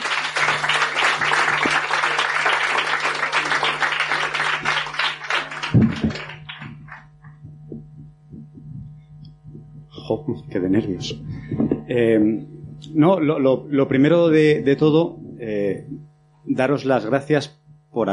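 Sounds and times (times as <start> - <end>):
crowd applause for a contest participant: 0.0 - 7.4
steady electrical hum: 0.0 - 18.1
speech: 10.3 - 18.1.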